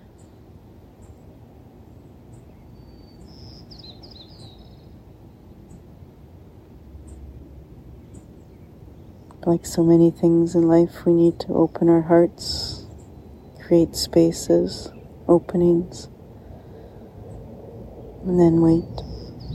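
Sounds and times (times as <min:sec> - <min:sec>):
birds chirping and trilling: 0:01.9 - 0:06.0, 0:07.9 - 0:19.5
steady low rumbling background: 0:04.5 - 0:19.5
speech: 0:09.4 - 0:12.8, 0:13.7 - 0:16.1, 0:18.3 - 0:19.0.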